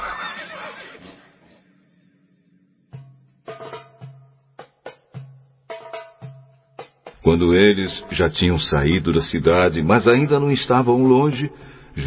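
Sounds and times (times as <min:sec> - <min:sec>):
donkey braying: 0:00.0 - 0:01.5
speech: 0:07.3 - 0:12.0.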